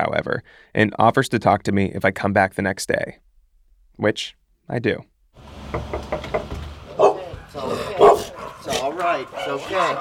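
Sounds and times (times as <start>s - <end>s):
speech: 0.0s - 3.2s, 4.0s - 6.5s, 9.0s - 9.9s
quick series of knocks: 5.4s - 7.6s
small dog barking in high-pitched yaps: 6.9s - 9.9s.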